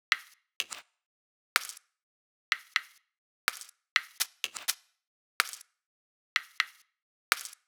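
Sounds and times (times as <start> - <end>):
core percussion loop: 0.1 - 0.8, 2.5 - 4.8, 5.4 - 5.6, 6.4 - 7.6.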